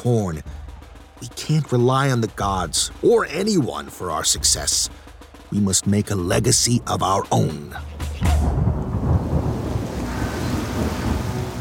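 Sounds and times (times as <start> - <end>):
speech: 0.0 - 0.6, 1.2 - 8.5
sharp thunderclap with deep rolling rumble: 8.1 - 11.5
steady heavy downpour of rain: 8.3 - 11.5.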